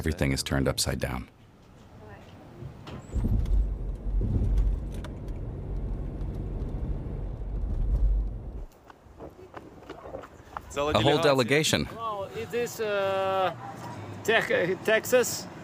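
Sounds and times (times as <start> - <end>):
speech: 0.0 - 1.4, 10.8 - 15.5
car engine rumbling as the vehicle pulls in and parks: 2.6 - 8.7.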